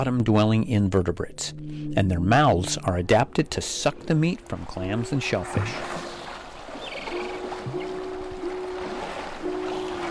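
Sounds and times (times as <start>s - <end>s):
speech: 0.0s - 6.0s
walrus gonging and belling calls underwater: 1.3s - 10.0s.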